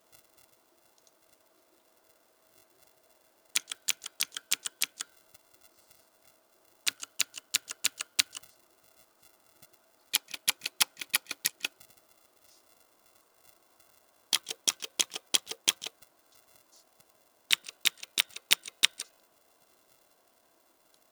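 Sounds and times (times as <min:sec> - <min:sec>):
fast keyboard typing: 0:03.6 - 0:05.1, 0:06.9 - 0:08.4, 0:10.2 - 0:11.8, 0:14.4 - 0:15.9, 0:17.5 - 0:19.1.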